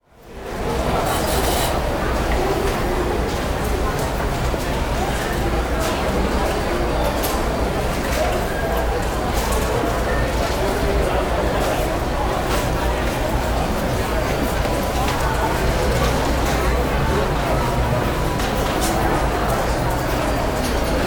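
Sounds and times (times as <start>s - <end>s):
busy bus station walla: 0.0s - 21.0s.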